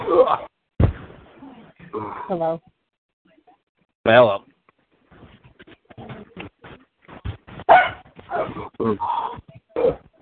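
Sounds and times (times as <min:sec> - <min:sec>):
speech: 0:00.1 - 0:00.5, 0:02.0 - 0:02.8, 0:04.0 - 0:04.5, 0:07.7 - 0:09.4
dog barking: 0:07.7 - 0:08.5.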